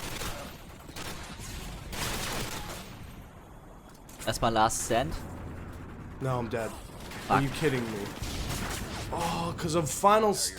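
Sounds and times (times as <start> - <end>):
video game gunfire from a gun fitted with a holographic sight: 0.0 - 3.2, 6.2 - 9.9
speech: 4.2 - 5.3, 6.2 - 8.3, 9.1 - 10.5.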